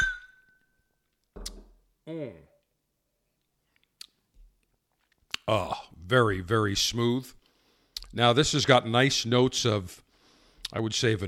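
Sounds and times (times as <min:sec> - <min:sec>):
glass ringing: 0:00.0 - 0:00.9
speech: 0:02.1 - 0:02.5, 0:05.5 - 0:07.4, 0:08.1 - 0:10.0, 0:10.7 - 0:11.2.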